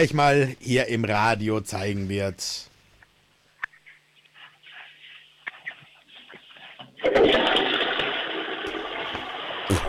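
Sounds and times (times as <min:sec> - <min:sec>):
speech: 0:00.0 - 0:02.7, 0:07.0 - 0:07.6
toilet flush: 0:07.0 - 0:09.8.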